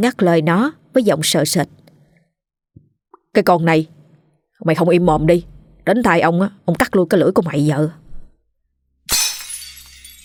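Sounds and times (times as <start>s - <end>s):
speech: 0.0s - 1.8s, 3.4s - 4.0s, 4.6s - 8.0s
something breaking and shattering: 9.1s - 10.2s.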